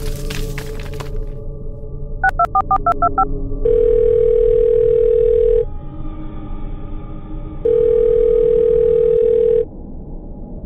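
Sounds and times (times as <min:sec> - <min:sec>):
phone keypad dialing beeps: 0:02.2 - 0:03.3
phone ringback tone: 0:02.2 - 0:05.6, 0:07.7 - 0:09.6.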